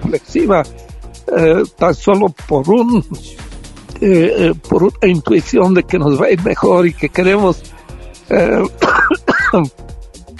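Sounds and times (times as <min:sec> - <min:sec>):
speech: 0:00.1 - 0:03.4, 0:04.0 - 0:07.7, 0:08.3 - 0:08.9, 0:09.5 - 0:09.8
person coughing with a bad cough: 0:04.0 - 0:04.6, 0:08.4 - 0:09.7
throat clearing: 0:04.0 - 0:04.6, 0:08.4 - 0:09.7.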